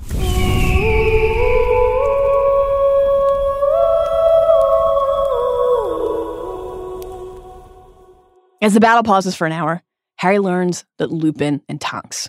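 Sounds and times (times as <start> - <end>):
ethereal phoenix song of layered sustained tones: 0.0 - 8.6
speech: 8.6 - 12.2.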